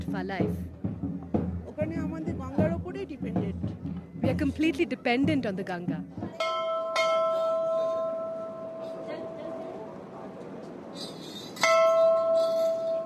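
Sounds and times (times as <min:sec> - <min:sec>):
soft murmur: 0:00.0 - 0:13.0
speech: 0:00.2 - 0:00.8, 0:03.0 - 0:06.6
old temple bell by the Ganges river ringing: 0:06.4 - 0:09.6, 0:11.6 - 0:13.0.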